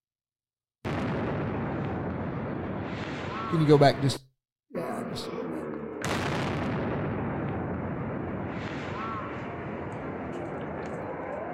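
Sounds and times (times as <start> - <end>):
bomb explosion: 0.8 - 3.8, 6.0 - 11.5
speech: 3.5 - 5.4.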